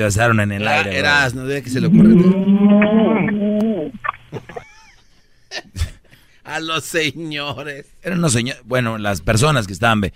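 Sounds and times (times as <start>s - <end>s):
speech: 0.0s - 4.6s, 6.5s - 10.1s
pig grunting: 1.7s - 4.0s
laughter: 4.3s - 6.0s.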